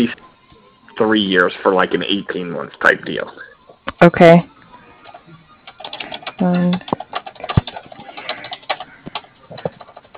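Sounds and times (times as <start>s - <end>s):
speech: 1.0s - 4.5s, 6.4s - 7.0s
keyboard clicks from typing notes: 5.0s - 10.1s.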